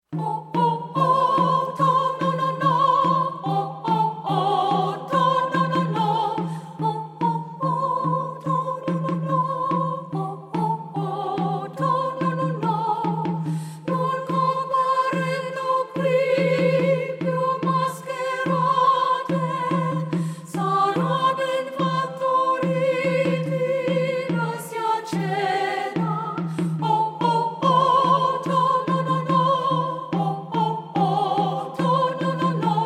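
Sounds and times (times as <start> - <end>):
soprano singing: 0.1 - 32.8.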